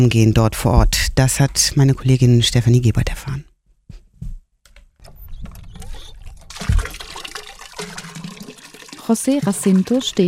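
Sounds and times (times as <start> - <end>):
speech: 0.0 - 3.5, 9.1 - 10.2
hand pump clunking and creaking: 5.0 - 10.0
water splashing into a bucket: 5.7 - 10.2.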